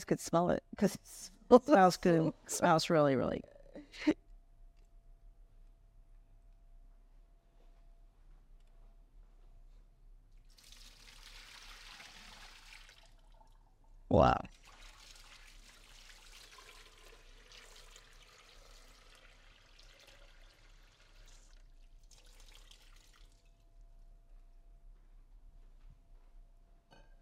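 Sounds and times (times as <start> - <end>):
speech: 0.0 - 4.2, 14.1 - 14.6
water pouring into a baking pan: 10.5 - 13.7, 14.5 - 23.6.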